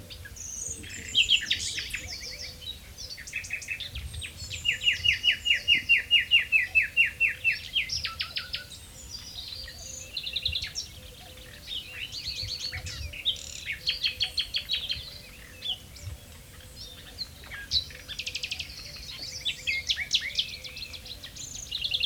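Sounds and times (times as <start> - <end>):
common nightingale Luscinia megarhynchos singing varied phrases: 0.0 - 22.0.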